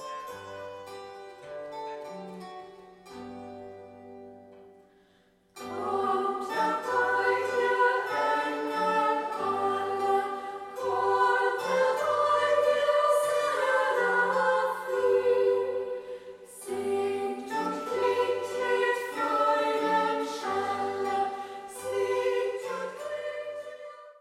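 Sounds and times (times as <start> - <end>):
women singing: 5.6 - 24.1.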